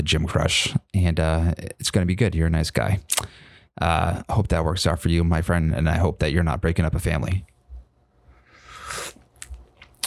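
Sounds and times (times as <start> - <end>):
speech: 0.0 - 7.5
person slurping a sip of coffee: 8.6 - 10.0.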